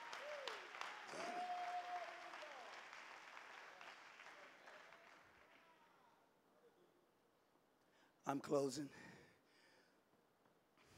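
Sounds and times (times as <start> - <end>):
congregation clapping hands: 0.0 - 6.1
person whooping: 0.1 - 2.7
speech: 8.3 - 9.2.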